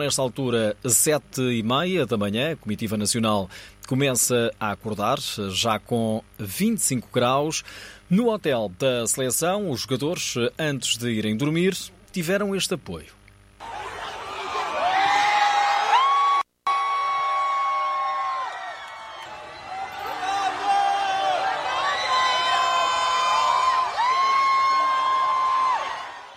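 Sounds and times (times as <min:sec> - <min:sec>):
speech: 0:00.0 - 0:13.7
dozens of fans shouting and chanting outside a team hotel: 0:13.6 - 0:26.3.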